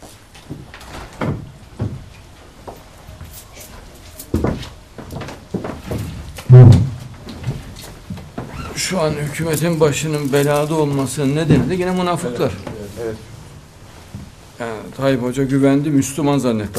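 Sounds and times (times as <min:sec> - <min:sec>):
door being opened with knocking thumps and creaks: 0:00.4 - 0:02.3, 0:04.3 - 0:09.4, 0:11.4 - 0:12.0
speech: 0:08.9 - 0:13.3, 0:15.0 - 0:16.7.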